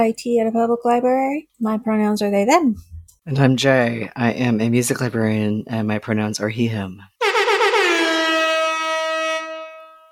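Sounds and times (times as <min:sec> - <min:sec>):
speech: 0:00.0 - 0:07.1
air horn blast: 0:07.2 - 0:10.1.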